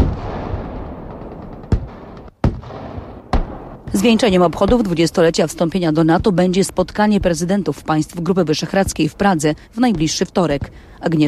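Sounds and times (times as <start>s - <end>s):
artillery and gunfire at a military training-ground exercise: 0.0s - 5.1s
speech: 4.0s - 11.2s.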